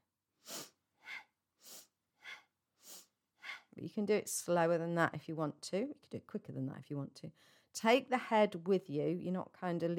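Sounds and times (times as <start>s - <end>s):
forceful rhythmic breaths through the nose during twisting exercise: 0.4s - 3.7s
speech: 3.8s - 9.9s.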